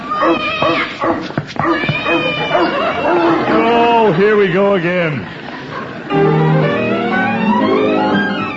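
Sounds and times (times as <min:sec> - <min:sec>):
cat yowling and caterwauling in a chase: 0:00.0 - 0:03.9
dog barking in a chase: 0:00.1 - 0:03.4
speech: 0:00.2 - 0:05.4
laughter: 0:02.2 - 0:08.4.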